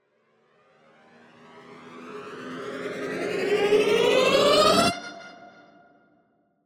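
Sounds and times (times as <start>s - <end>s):
space riser effect rising in speed: 1.7s - 5.0s.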